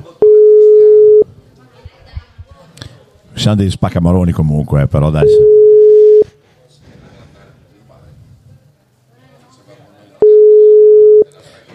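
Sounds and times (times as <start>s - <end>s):
quiet talk: 0.0s - 3.3s, 6.2s - 11.7s
telephone busy tone: 0.2s - 1.3s, 5.2s - 6.3s, 10.2s - 11.3s
speech: 3.4s - 5.6s.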